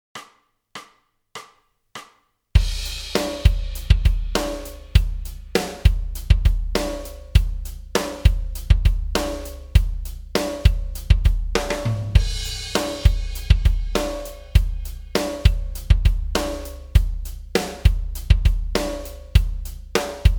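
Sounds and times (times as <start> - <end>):
tap slides backing track music: 2.6 - 9.8, 10.4 - 19.2.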